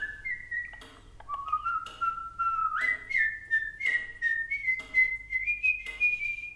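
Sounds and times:
whistled melody for a caged starling in a shop in Vienna: 0.0s - 6.5s.

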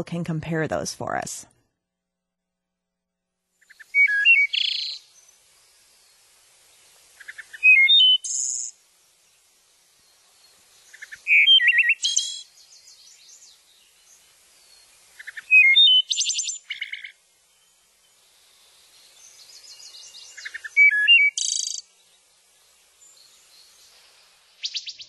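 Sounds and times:
speech: 0.0s - 1.6s
wood thrush singing clear flutelike phrases with shimmering trills: 3.7s - 5.3s, 7.2s - 8.7s, 10.0s - 25.0s.

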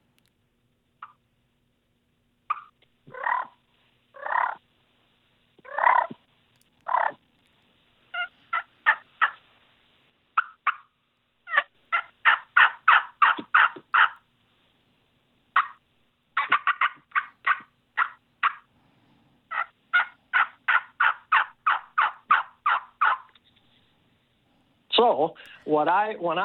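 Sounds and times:
hunter imitating hen turkey clucks and yelps with a turkey call: 2.5s - 3.6s, 4.2s - 4.6s, 5.6s - 7.2s, 8.1s - 9.4s, 10.4s - 14.2s, 15.6s - 15.8s, 16.4s - 18.7s, 19.5s - 23.8s
speech: 25.0s - 26.4s.

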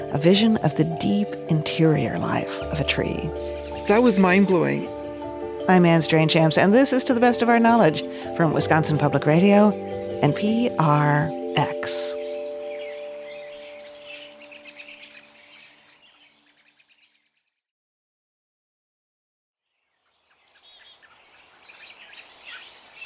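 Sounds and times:
speech: 0.1s - 5.0s, 5.6s - 12.2s
chorus of birds chattering and chirping in a cottonwood grove: 0.8s - 6.2s, 9.0s - 17.4s, 20.1s - 23.0s.

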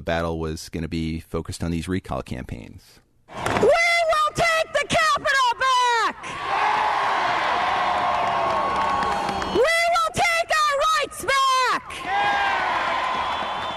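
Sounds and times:
speech: 0.0s - 3.8s
loud shouts: 3.4s - 13.7s
large crowd roaring and cheering: 6.2s - 9.6s, 11.9s - 13.7s.

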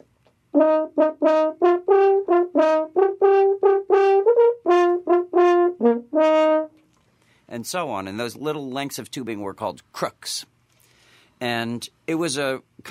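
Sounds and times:
speech: 0.6s - 6.7s, 7.5s - 10.6s, 11.4s - 12.8s
horn pitched in E flat playing a lively phrase: 0.6s - 6.8s.

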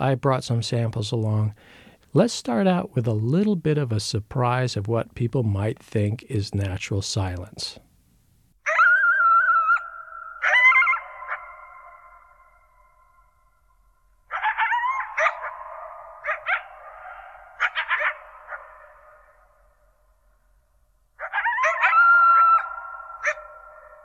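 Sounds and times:
speech: 0.0s - 7.8s
pair of coyotes howling and yipping at night at the edge of Olympic National Park: 8.6s - 13.3s, 14.3s - 19.4s, 21.2s - 24.0s.

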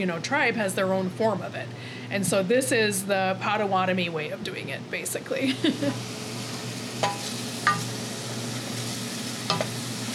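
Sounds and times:
speech: 0.0s - 6.2s
onions sautéing in a pan on the stove for soup: 5.7s - 10.1s.

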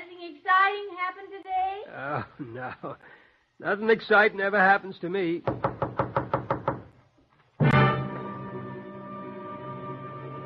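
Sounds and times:
speech: 0.7s - 5.8s
knocking on a door: 5.4s - 6.9s.

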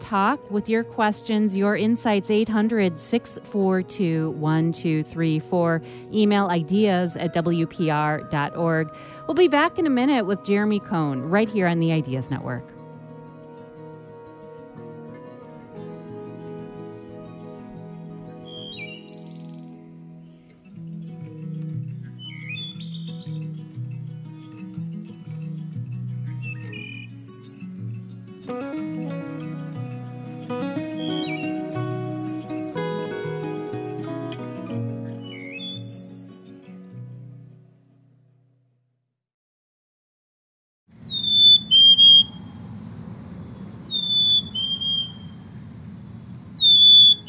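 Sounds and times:
low sustained musical background: 0.0s - 37.5s
speech: 0.1s - 12.7s
black-capped chickadee whistled calls: 18.4s - 19.8s, 22.2s - 23.4s, 26.4s - 27.8s, 30.8s - 32.5s, 35.2s - 36.6s, 41.1s - 42.6s, 43.4s - 45.5s, 46.6s - 47.2s.

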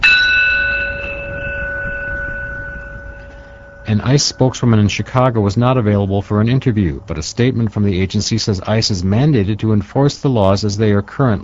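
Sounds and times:
bell rung at a vigil: 0.0s - 5.8s
faint low rumble: 0.0s - 9.9s
speech: 3.9s - 11.4s.

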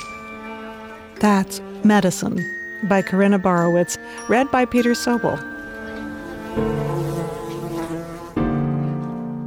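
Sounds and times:
swarm of bees buzzing: 0.0s - 8.5s
speech: 1.2s - 5.5s.

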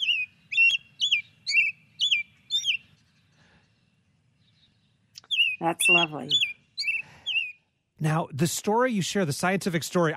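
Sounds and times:
American robin singing whistled phrases: 0.0s - 2.9s, 5.2s - 7.6s
speech: 5.6s - 6.5s, 8.0s - 10.1s.

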